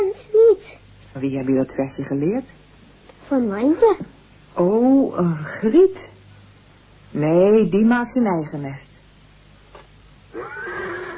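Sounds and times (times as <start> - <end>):
speech: 1.2 - 2.6, 3.3 - 6.1, 7.1 - 8.9
horses neighing outside: 10.3 - 11.1.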